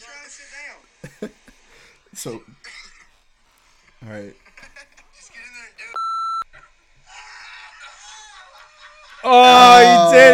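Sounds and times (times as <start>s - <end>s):
speech: 2.2s - 2.8s, 4.0s - 4.5s, 9.2s - 10.3s
electronic censor beep over a person's name: 6.0s - 6.4s.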